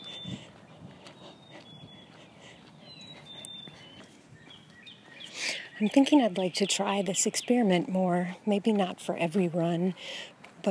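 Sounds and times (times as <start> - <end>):
chickadees and other birds chirping and whistling: 0.0 - 7.9
soft steady outdoor rumble: 0.0 - 10.7
speech: 5.8 - 10.7.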